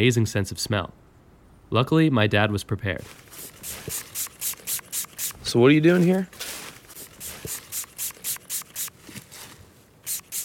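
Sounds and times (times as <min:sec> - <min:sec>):
speech: 0:00.0 - 0:01.1, 0:01.7 - 0:04.0, 0:05.5 - 0:06.4
spray bottle spritzing fox urine onto a wick: 0:03.1 - 0:05.5, 0:06.6 - 0:09.0, 0:10.0 - 0:10.4.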